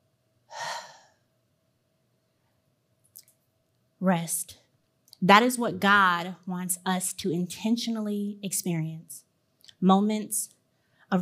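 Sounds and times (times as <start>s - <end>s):
deep breath during a guided breathing pause at a church service: 0.5s - 1.2s
speech: 4.0s - 4.6s, 5.2s - 11.2s.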